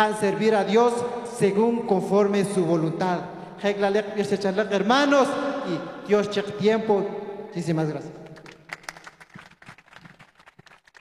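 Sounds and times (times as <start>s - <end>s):
speech: 0.0s - 8.2s
group applauding: 8.3s - 10.9s.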